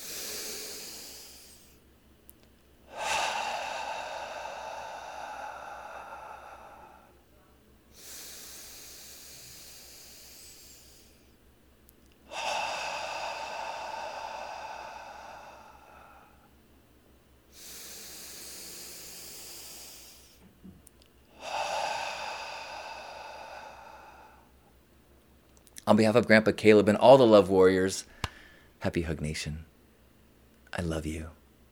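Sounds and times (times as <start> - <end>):
deep breaths drawn in through the nose: 0.0 - 1.8, 2.9 - 7.2, 7.9 - 11.4, 12.3 - 16.5, 17.5 - 20.5, 21.4 - 24.6, 28.1 - 28.8
speech: 25.9 - 28.2, 28.8 - 29.7, 30.8 - 31.4.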